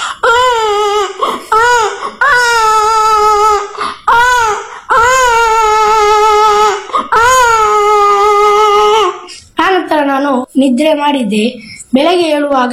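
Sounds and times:
voice imitating a baby crying at night: 0.0 - 9.4
speech: 10.6 - 12.7.

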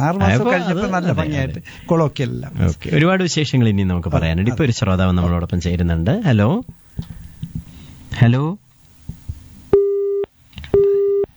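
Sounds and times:
laughter: 0.0 - 6.6
speech: 0.0 - 7.2, 8.2 - 8.6
busy tone on a telephone line after a dropped call: 10.8 - 11.3.

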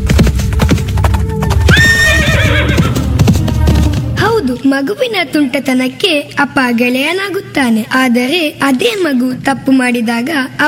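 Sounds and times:
horse hooves clip-clopping: 0.0 - 4.6
horse whinnying: 1.5 - 3.2
speech: 4.7 - 10.6.

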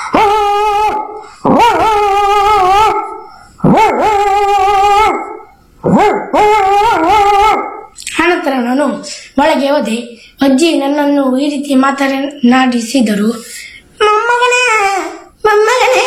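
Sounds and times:
grandmother's dog barking and howling: 0.0 - 8.0
speech: 9.4 - 16.0.

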